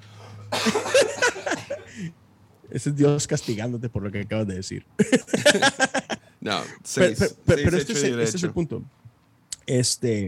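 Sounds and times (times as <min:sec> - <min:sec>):
raspy coughs: 0:00.4 - 0:02.1
speech: 0:00.6 - 0:01.2, 0:02.0 - 0:09.0, 0:09.7 - 0:10.2
person laughing: 0:00.6 - 0:02.1, 0:05.0 - 0:06.2.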